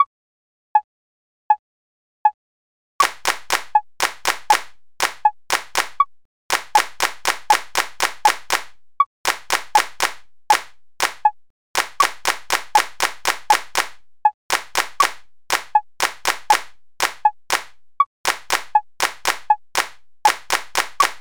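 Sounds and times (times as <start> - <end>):
rhythm reading exercise in eighth-note triplets: 3.0 - 21.1.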